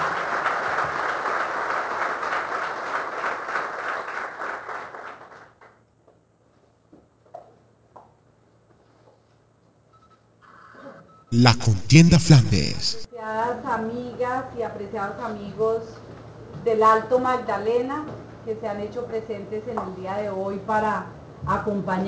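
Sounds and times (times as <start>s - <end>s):
audience clapping at a political campaign event: 0.0s - 5.7s, 11.4s - 13.1s
speech: 11.3s - 13.0s, 13.8s - 16.0s, 16.6s - 22.0s.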